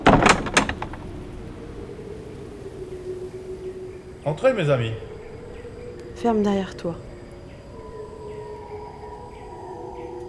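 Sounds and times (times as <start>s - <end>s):
rattle of a door swinging open: 0.0s - 2.3s
speech: 4.2s - 5.1s, 6.2s - 7.1s.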